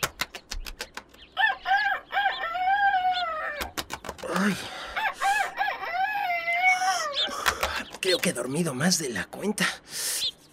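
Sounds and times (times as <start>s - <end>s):
sharp clicking taps: 0.0s - 1.3s, 3.6s - 4.4s, 7.3s - 8.3s
rooster crowing at dawn: 1.4s - 3.7s, 4.7s - 7.3s
speech: 4.4s - 4.8s, 8.1s - 10.2s
person exclaiming: 6.4s - 7.2s.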